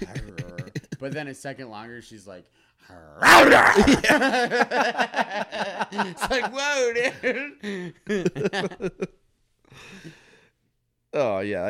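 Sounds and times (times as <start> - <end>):
laughter: 0.0 - 1.2, 3.7 - 9.2
speech: 1.0 - 9.2, 11.1 - 11.6
person imitating the growl of a female pet cat: 3.2 - 4.0.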